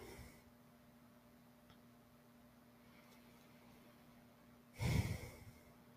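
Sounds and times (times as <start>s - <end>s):
heavy breath through the mouth: 4.8s - 5.7s.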